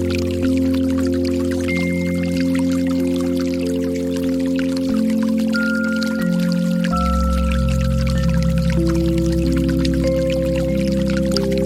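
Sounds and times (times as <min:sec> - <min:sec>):
water: 0:00.0 - 0:11.6.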